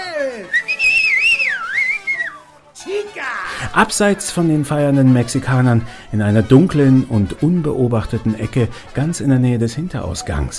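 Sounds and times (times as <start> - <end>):
loud whistle from drunken men in a cantina: 0.4 - 2.6
speech: 3.7 - 10.5.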